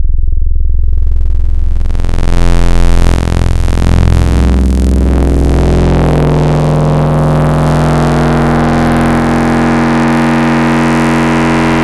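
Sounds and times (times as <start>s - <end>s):
mini saw synth wave with Serum wavetables: 0.9s - 11.8s.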